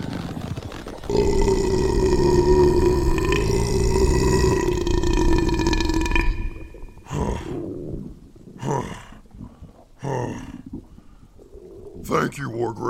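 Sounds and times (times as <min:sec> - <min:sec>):
speech: 0:01.1 - 0:01.7, 0:12.4 - 0:12.8
long loud rumbling burp with deep roaring tone: 0:01.1 - 0:07.6
short breathy gasps and exhales: 0:01.1 - 0:12.1.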